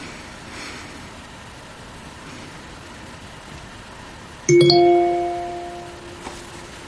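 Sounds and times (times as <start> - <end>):
single bell ringing: 4.5 - 6.7.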